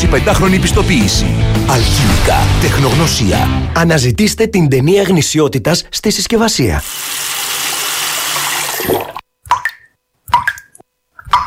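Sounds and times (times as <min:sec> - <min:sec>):
speech: 0:00.1 - 0:07.3
water running from a tap: 0:06.8 - 0:09.2
water drips from a tap: 0:08.6 - 0:11.4.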